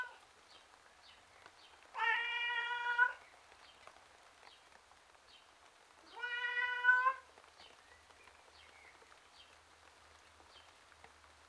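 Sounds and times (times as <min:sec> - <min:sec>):
domestic tom cat wailing meow outside: 0:02.0 - 0:03.2, 0:06.1 - 0:07.2.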